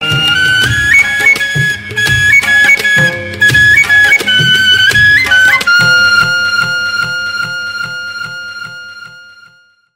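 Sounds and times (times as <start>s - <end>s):
flute tone ringtone: 0.0s - 9.9s.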